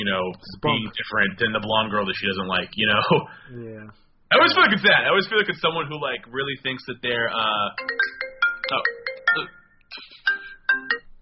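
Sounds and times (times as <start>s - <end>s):
speech: 0.0s - 11.0s
Apple basic ringtone for an incoming phone call: 7.8s - 11.2s.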